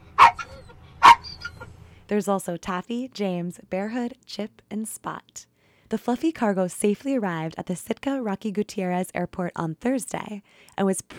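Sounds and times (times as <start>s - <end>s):
dog barking: 0.2s - 1.5s
speech: 2.1s - 11.1s.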